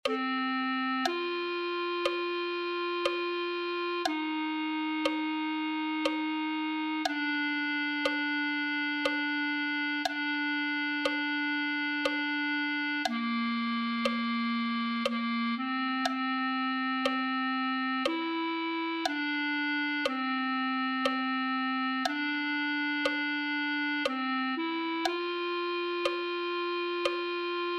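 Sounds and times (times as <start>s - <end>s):
clarinet: 0.0s - 27.7s.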